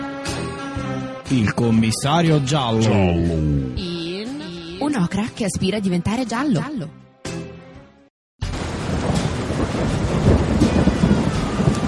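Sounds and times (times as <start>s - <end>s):
speech: 1.3s - 4.0s, 4.8s - 7.0s
deep rumbling thunder: 8.4s - 11.8s
loud dense heavy rain pouring down: 8.4s - 11.8s.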